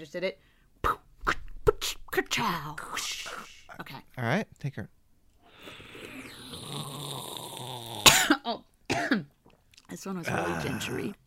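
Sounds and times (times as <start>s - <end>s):
speech: 0.0s - 1.0s, 1.8s - 5.0s, 8.5s - 9.3s, 9.9s - 11.2s
harsh coughs: 7.9s - 9.3s.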